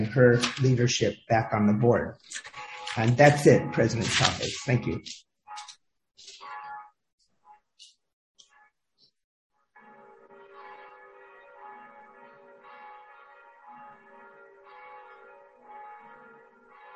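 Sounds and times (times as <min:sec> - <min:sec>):
speech: 0:00.0 - 0:05.3
church bells ringing in a continuous layered peal: 0:00.0 - 0:05.7, 0:06.3 - 0:07.0, 0:09.8 - 0:16.9.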